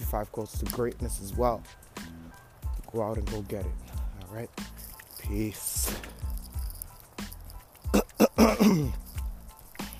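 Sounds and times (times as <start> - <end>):
speech: 0.1 - 1.9, 2.9 - 6.0, 8.4 - 9.0
person clearing throat with rough raspy bursts: 7.9 - 9.1.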